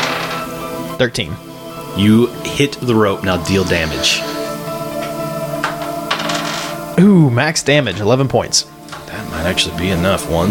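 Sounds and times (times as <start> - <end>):
small dice clattering across a hard tabletop: 0.0 - 0.5, 6.1 - 6.7
speech: 1.0 - 4.4, 7.0 - 10.4.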